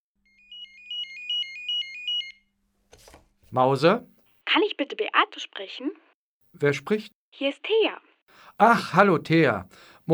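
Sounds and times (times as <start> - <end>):
telephone ringing with a bright electronic warble: 0.3 - 2.4
speech: 3.5 - 6.0, 6.6 - 10.1.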